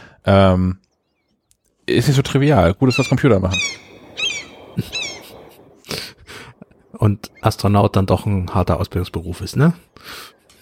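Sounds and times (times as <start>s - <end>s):
speech: 0.2s - 0.8s, 1.9s - 3.9s, 4.8s - 5.0s, 7.0s - 10.4s
shrill harmonic seagull cries: 2.9s - 5.8s.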